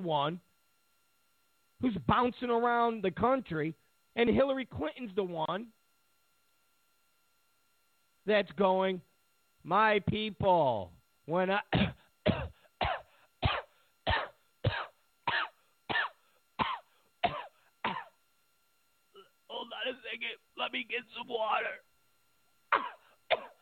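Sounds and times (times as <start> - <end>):
speech: 0.0 - 0.5, 1.8 - 5.8, 8.2 - 12.4, 19.8 - 21.9
person coughing in a harsh hacking fit: 11.8 - 18.2, 22.7 - 23.5.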